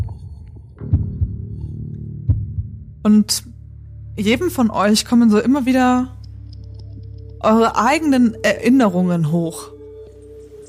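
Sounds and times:
deep heartbeat thumps: 0:00.0 - 0:03.0
low steady droning hum: 0:00.0 - 0:10.6
speech: 0:03.0 - 0:03.6, 0:04.2 - 0:06.2, 0:07.4 - 0:09.7.

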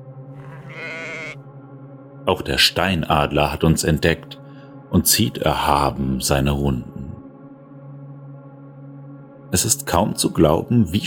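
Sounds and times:
single sheep bleating in the distance: 0:00.4 - 0:01.4
speech: 0:02.3 - 0:07.0, 0:09.5 - 0:11.0.

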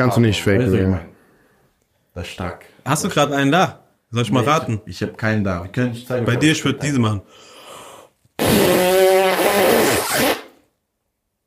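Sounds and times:
speech: 0:00.0 - 0:01.1, 0:02.2 - 0:07.5, 0:08.4 - 0:10.4
faint breathy noise: 0:01.1 - 0:02.9, 0:07.2 - 0:08.2
fart noise made with the mouth: 0:08.4 - 0:10.7.

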